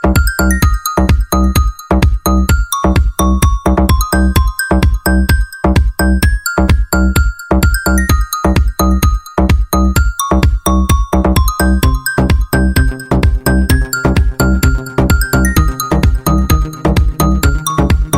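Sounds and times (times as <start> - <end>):
crystal electro trap ringtone: 0.0 - 18.1.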